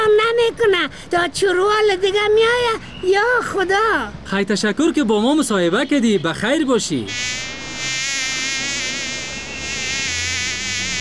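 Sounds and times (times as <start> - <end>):
speech: 0.8 - 7.9
fly buzzing: 7.1 - 10.9.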